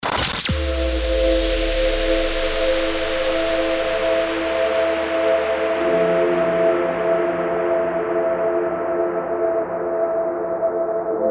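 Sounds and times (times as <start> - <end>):
drone in A minor: 0.0 - 11.2.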